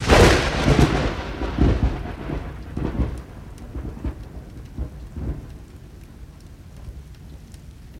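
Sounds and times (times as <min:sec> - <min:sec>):
medium thunder crack: 0:00.0 - 0:06.2.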